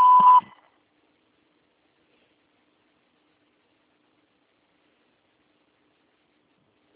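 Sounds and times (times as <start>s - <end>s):
voicemail beep tone: 0.0s - 0.6s.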